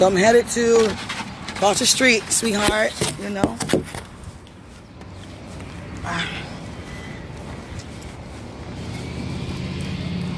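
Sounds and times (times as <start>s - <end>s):
speech: 0.0s - 4.0s, 6.1s - 6.5s
traffic noise: 0.0s - 10.3s
bus engine drone on a street: 5.0s - 10.3s.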